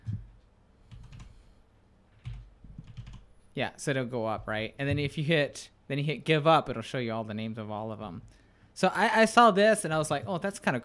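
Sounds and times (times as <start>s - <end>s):
typing on a computer keyboard: 0.9s - 1.3s, 2.2s - 3.3s
speech: 3.6s - 10.8s.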